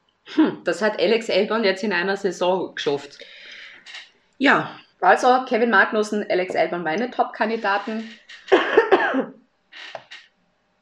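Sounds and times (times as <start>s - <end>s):
speech: 0.4s - 9.4s
person coughing: 8.4s - 9.4s.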